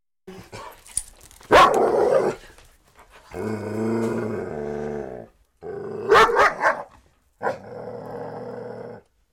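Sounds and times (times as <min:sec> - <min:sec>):
dog barking: 0:01.5 - 0:02.3, 0:06.1 - 0:07.6.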